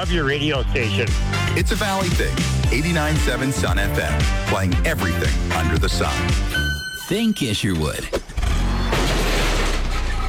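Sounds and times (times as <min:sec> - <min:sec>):
speech: 0:00.0 - 0:08.2
car backing into a garbage can: 0:08.9 - 0:10.2.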